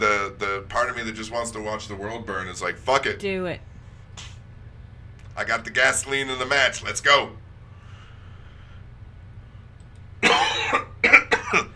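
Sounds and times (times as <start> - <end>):
speech: 0.6 - 4.3, 5.4 - 7.4
person coughing harshly: 10.2 - 11.7.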